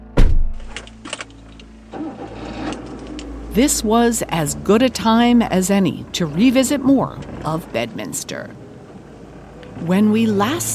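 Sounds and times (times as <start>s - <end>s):
car engine cranking and idling: 0.0s - 10.7s
car door thudding shut: 0.1s - 0.7s
speech: 3.6s - 8.6s, 9.8s - 10.7s.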